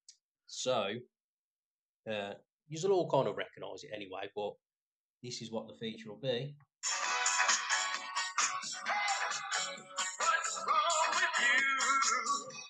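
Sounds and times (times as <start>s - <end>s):
speech: 0.6s - 1.2s, 2.0s - 4.6s, 5.2s - 7.0s
upbeat jingle music played from a phone: 6.8s - 12.6s.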